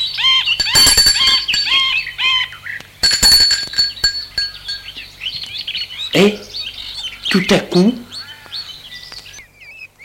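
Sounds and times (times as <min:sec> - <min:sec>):
high ringing tones: 0:00.0 - 0:02.4, 0:03.0 - 0:05.1
bell ringing: 0:00.6 - 0:02.1, 0:03.0 - 0:05.0
speech: 0:06.2 - 0:06.4, 0:07.3 - 0:08.0.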